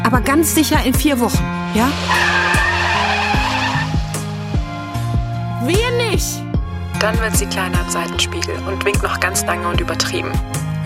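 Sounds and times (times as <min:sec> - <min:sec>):
speech: 0:00.1 - 0:02.5, 0:05.6 - 0:06.4, 0:07.0 - 0:10.8
car tires squealing while accelerating hard: 0:01.2 - 0:06.2
car engine accelerating through gear changes: 0:01.2 - 0:06.3.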